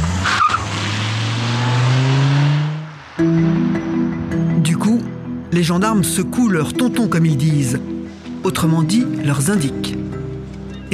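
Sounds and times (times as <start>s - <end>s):
tire screech: 0.0s - 3.2s
car engine revving as the vehicle pulls away: 0.0s - 4.5s
speech: 5.6s - 10.0s.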